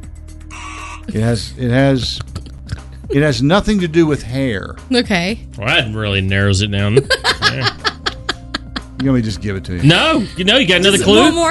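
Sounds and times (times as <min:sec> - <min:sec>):
person imitating a game show buzzer: 0:00.5 - 0:01.1
speech: 0:01.1 - 0:02.3, 0:03.1 - 0:07.9, 0:09.0 - 0:11.4
laughter: 0:06.9 - 0:10.9.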